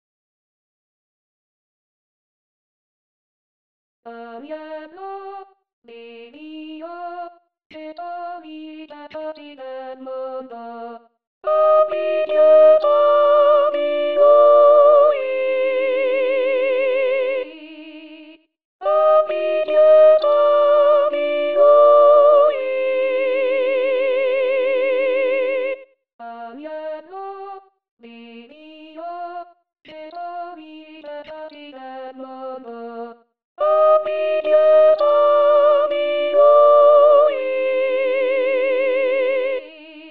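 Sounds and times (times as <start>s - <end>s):
tenors singing a sacred piece: 11.5s - 16.8s, 18.8s - 25.2s, 33.6s - 39.5s.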